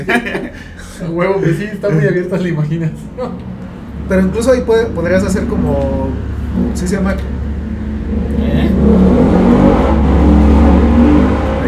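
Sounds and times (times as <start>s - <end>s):
laughter: 0.0s - 3.4s
speech: 0.0s - 7.5s
motorcycle engine revving: 2.9s - 11.6s.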